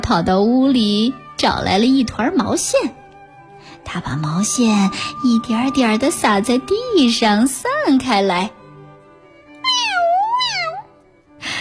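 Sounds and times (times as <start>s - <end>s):
speech: 0.1s - 3.0s, 3.6s - 8.6s
tabby cat meowing: 9.6s - 11.0s.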